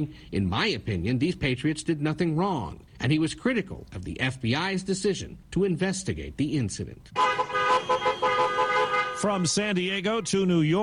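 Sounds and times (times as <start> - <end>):
speech: 0.0 - 8.0, 9.2 - 10.8
traffic noise: 0.0 - 10.8
car and truck horns honking in a caravan in Texas: 7.1 - 9.6.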